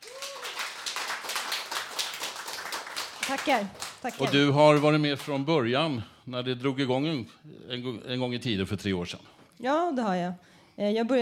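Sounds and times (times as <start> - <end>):
small group of people clapping: 0.0 - 5.6
speech: 3.3 - 11.2.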